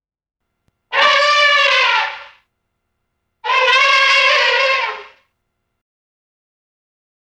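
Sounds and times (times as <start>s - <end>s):
elephant trumpet blasts: 0.9s - 2.4s, 3.4s - 5.2s.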